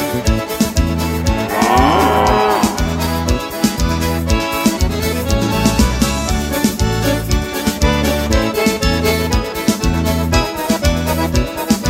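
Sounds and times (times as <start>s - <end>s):
bass-heavy music beat: 0.1s - 11.8s
cow mooing: 1.3s - 3.6s.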